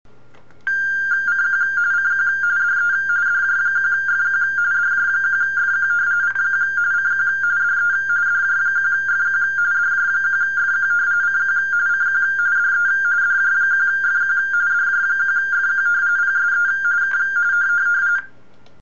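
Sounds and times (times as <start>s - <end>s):
radioteletype signal: 0.7s - 18.3s.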